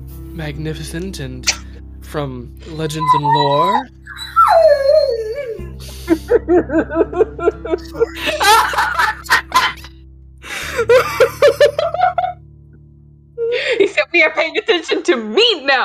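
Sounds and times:
speech: 0:00.4 - 0:04.6, 0:05.6 - 0:09.0, 0:10.8 - 0:11.6, 0:14.0 - 0:15.8
dog whining: 0:02.6 - 0:05.8
laughter: 0:05.8 - 0:09.9, 0:10.6 - 0:12.4.

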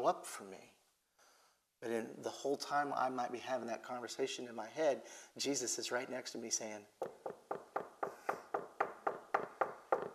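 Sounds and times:
speech: 0:00.0 - 0:00.8, 0:01.8 - 0:07.4
sharp hollow knocking on a door: 0:07.0 - 0:10.1.

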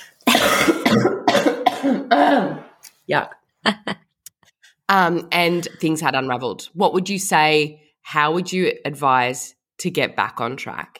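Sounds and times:
harsh raspy coughs: 0:00.2 - 0:02.8
speech: 0:03.1 - 0:04.0, 0:04.9 - 0:10.9.

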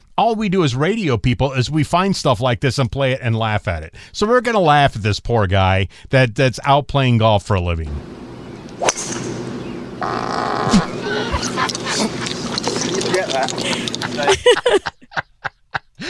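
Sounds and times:
speech: 0:00.2 - 0:08.2, 0:10.0 - 0:10.8, 0:13.2 - 0:15.3
fart picked up by a golfer's microphone outdoors: 0:10.0 - 0:14.0
murmuring voices and chatter: 0:10.0 - 0:14.3
laughter: 0:10.5 - 0:16.0.

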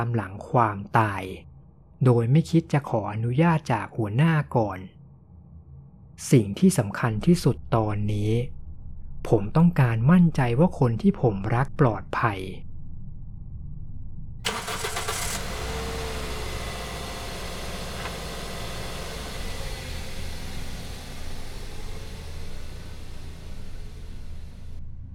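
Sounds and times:
speech: 0:00.0 - 0:05.0, 0:06.2 - 0:08.6, 0:09.2 - 0:12.7
car starter cranking: 0:14.5 - 0:24.8.

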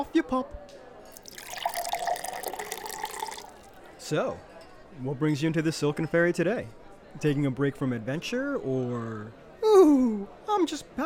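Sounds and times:
speech: 0:00.0 - 0:00.8, 0:04.1 - 0:11.0
white wine pouring into a glass: 0:01.2 - 0:03.8.

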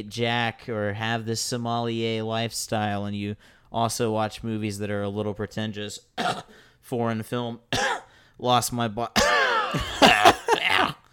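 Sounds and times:
speech: 0:00.0 - 0:10.3
harsh coughing: 0:06.2 - 0:06.6, 0:07.7 - 0:08.1, 0:09.2 - 0:11.1.

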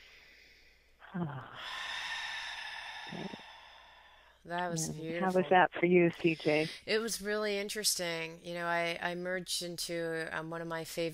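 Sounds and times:
deep cleansing breath during a guided breathing exercise: 0:00.0 - 0:04.4
speech: 0:01.1 - 0:02.0, 0:03.1 - 0:03.4, 0:04.4 - 0:11.1.

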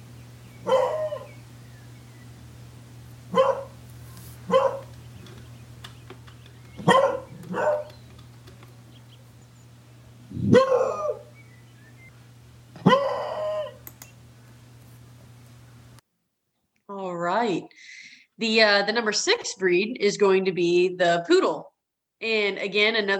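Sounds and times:
low hum: 0:00.0 - 0:16.0
beagle barking: 0:00.6 - 0:01.4, 0:03.3 - 0:03.8, 0:04.4 - 0:05.0, 0:06.8 - 0:08.0, 0:10.4 - 0:11.4, 0:12.8 - 0:13.8
speech: 0:16.9 - 0:23.1.

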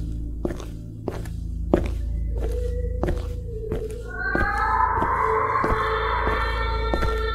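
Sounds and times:
footsteps of a person walking down a hallway in the dark: 0:00.0 - 0:07.3
low droning rumble: 0:00.0 - 0:07.3
eerie sustained wailing tones: 0:04.0 - 0:07.3.

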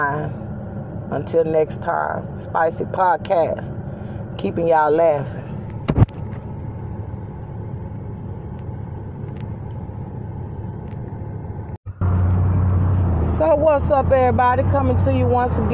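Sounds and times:
speech: 0:00.0 - 0:00.5, 0:01.1 - 0:03.8, 0:04.4 - 0:05.6, 0:13.4 - 0:15.7
car driving through the streets of Houston: 0:00.0 - 0:15.7
constant hum: 0:00.0 - 0:15.7
low road rumble: 0:00.0 - 0:15.7.

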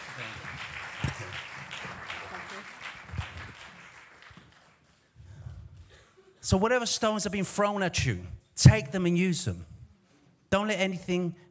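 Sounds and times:
audience clapping: 0:00.0 - 0:05.2
speech: 0:06.5 - 0:09.7, 0:10.5 - 0:11.4.

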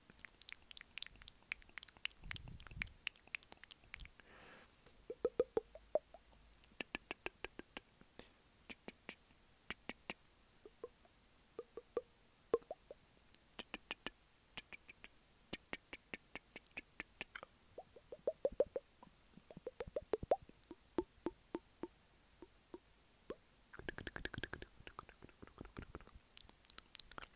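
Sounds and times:
wet mouth clicks, pops and smacks: 0:00.0 - 0:04.2, 0:04.9 - 0:07.9, 0:11.6 - 0:12.0, 0:12.6 - 0:22.9, 0:23.7 - 0:27.3
soft breathy hiss: 0:00.0 - 0:27.3.

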